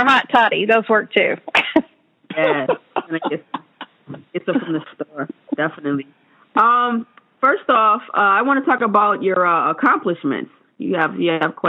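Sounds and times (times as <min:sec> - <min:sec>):
speech: 0:00.0 - 0:11.6
sick person coughing: 0:01.5 - 0:04.0
laughter: 0:02.3 - 0:05.6.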